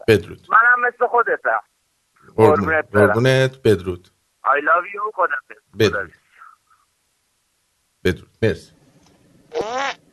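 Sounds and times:
speech: 0:00.1 - 0:01.7, 0:02.3 - 0:06.2, 0:08.0 - 0:08.8, 0:09.5 - 0:10.0
fart: 0:09.5 - 0:10.0.

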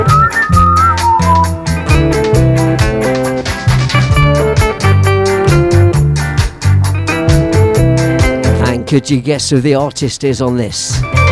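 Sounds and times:
whistled melody in a ska and revival reggae instrumental: 0:00.0 - 0:02.2
old-school ska and revival reggae instrumental with pulsing beat and sustained chords: 0:00.0 - 0:11.3
speech: 0:08.9 - 0:11.3.

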